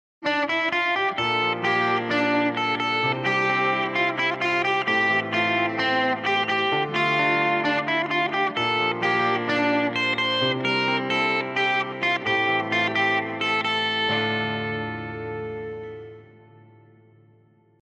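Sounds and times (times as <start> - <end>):
guitar through free amp drive: 0.2 - 17.7.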